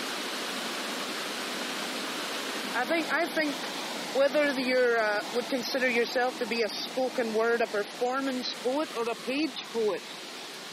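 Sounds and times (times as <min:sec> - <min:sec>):
water tumbling around rocks: 0:00.0 - 0:10.7
speech: 0:02.8 - 0:10.3.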